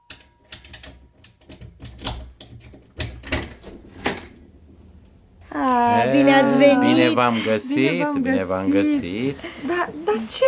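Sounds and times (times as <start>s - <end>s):
door being opened: 0.2s - 4.5s
speech: 5.6s - 10.4s.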